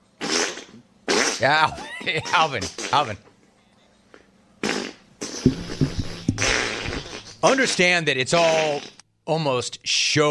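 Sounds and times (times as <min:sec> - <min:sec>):
flatulence in loud raspy bursts: 0:00.2 - 0:01.5, 0:04.6 - 0:07.5, 0:08.4 - 0:09.0
speech: 0:01.4 - 0:03.3, 0:07.4 - 0:10.2.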